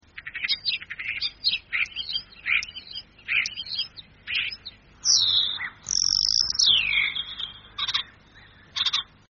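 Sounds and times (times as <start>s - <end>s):
common starling singing a varied medley: 0.2s - 9.3s.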